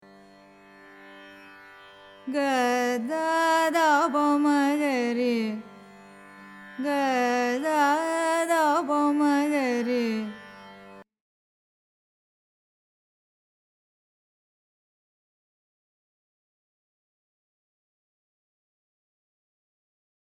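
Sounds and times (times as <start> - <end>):
carnatic music in raga mohanakalyani: 0.0 - 11.1.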